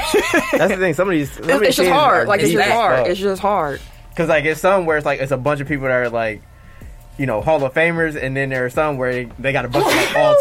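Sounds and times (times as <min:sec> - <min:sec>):
speech: 0:00.1 - 0:06.5, 0:07.2 - 0:10.3
person sneezing: 0:09.8 - 0:10.3.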